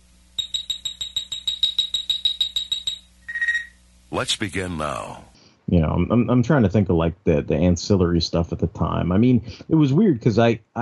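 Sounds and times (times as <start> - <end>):
sci-fi communicator chirp of bright electronic pips: 0.4 - 3.8
speech: 4.1 - 10.8.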